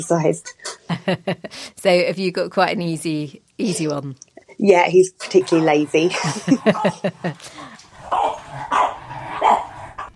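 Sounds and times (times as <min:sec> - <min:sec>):
speech: 0:00.0 - 0:07.8
laughter: 0:00.9 - 0:01.7, 0:06.1 - 0:07.8
puppies barking: 0:06.4 - 0:10.1.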